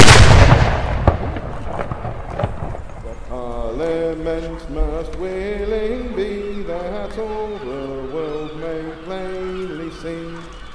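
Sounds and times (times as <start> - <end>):
ceremonial cannon blast: 0.0 - 3.0
sharp crack: 0.0 - 6.0
speech: 4.3 - 9.3.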